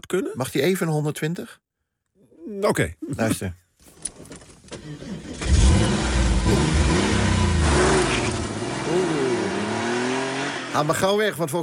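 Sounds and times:
speech: 0.1s - 1.7s, 2.5s - 4.2s, 10.8s - 11.6s
Porsche 911 engine cranking and revving: 4.6s - 11.0s.

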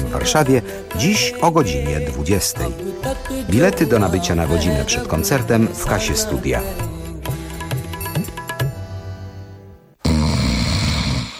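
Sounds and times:
speech: 0.1s - 7.0s
loud rough rattling snore: 10.0s - 11.3s.

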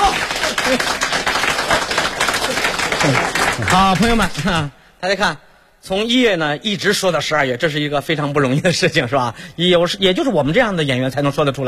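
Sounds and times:
audience applause at a live comic duo stage performance: 0.0s - 4.6s
speech: 0.7s - 1.0s, 3.1s - 11.6s.

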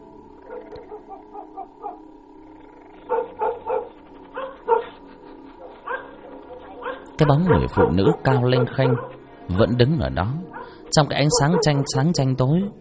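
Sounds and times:
dog barking inside a house: 0.5s - 2.1s, 3.1s - 9.7s, 10.5s - 12.3s
speech: 1.2s - 3.5s, 7.2s - 12.7s.

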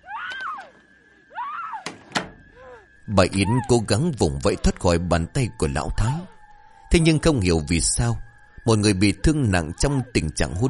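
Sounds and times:
door thudding shut: 1.8s - 2.4s
door creaking: 1.8s - 2.6s
speech: 3.1s - 10.6s.

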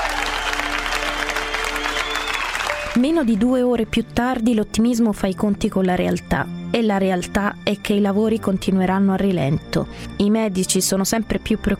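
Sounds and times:
applause from thousands of people crowded around a well: 0.0s - 3.5s
speech: 3.0s - 11.7s.

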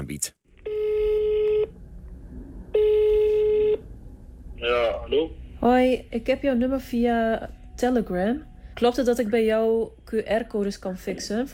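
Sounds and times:
speech: 0.0s - 0.4s, 4.6s - 11.5s
telephone ringing tone on an outgoing call: 0.6s - 1.8s, 2.7s - 3.9s.

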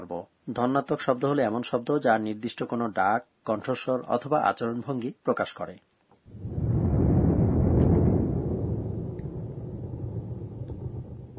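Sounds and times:
speech: 0.1s - 6.5s
deep rumbling thunder: 6.3s - 11.3s.

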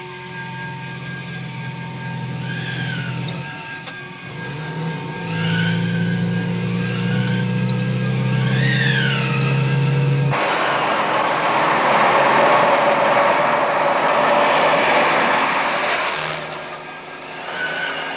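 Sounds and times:
car engine approaching along a tree-lined road: 0.0s - 18.1s.

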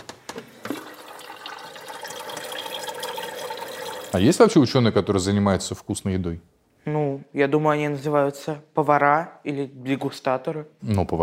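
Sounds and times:
water poured into a kettle: 0.6s - 4.3s
speech: 4.1s - 11.2s.

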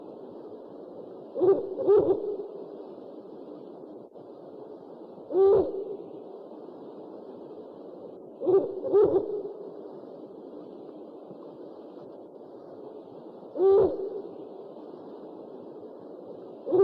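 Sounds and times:
steady hiss: 0.0s - 16.8s
owl hooting: 1.3s - 2.8s, 5.3s - 6.3s, 8.4s - 9.7s, 13.5s - 14.7s, 16.6s - 16.8s.

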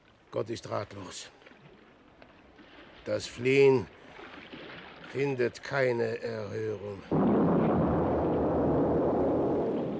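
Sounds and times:
speech: 0.3s - 1.4s, 3.1s - 4.0s, 5.1s - 7.3s
ship exploding and sinking radio drama effect: 7.1s - 9.9s.

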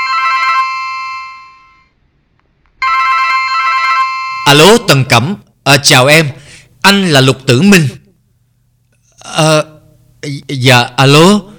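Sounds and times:
electronic telephone ringtone: 0.0s - 1.9s, 2.8s - 4.8s
speech: 4.5s - 8.0s, 9.4s - 11.5s.

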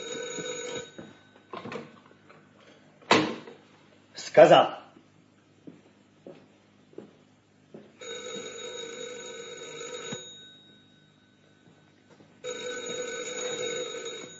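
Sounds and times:
telephone ringing at home: 0.0s - 2.0s, 8.0s - 14.3s
speech: 4.4s - 4.8s.

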